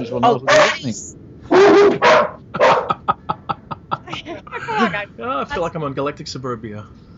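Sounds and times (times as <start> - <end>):
speech: 0.0 - 2.6, 4.1 - 7.1
dogs barking: 0.2 - 0.9, 1.5 - 3.2
dogs yipping and whimpering: 1.5 - 3.0
laughter: 2.5 - 5.1.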